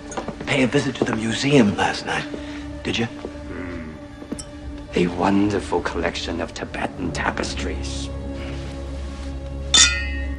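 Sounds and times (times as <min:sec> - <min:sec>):
drinking glasses clinking together in a toast: 0:00.0 - 0:00.4, 0:04.3 - 0:04.6, 0:09.7 - 0:10.3
speech: 0:00.5 - 0:03.4, 0:05.0 - 0:08.2.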